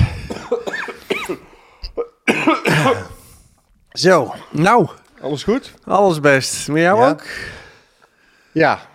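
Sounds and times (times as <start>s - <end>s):
person coughing after choking on tea: 0.0s - 3.2s
speech: 4.0s - 7.6s, 8.5s - 8.9s.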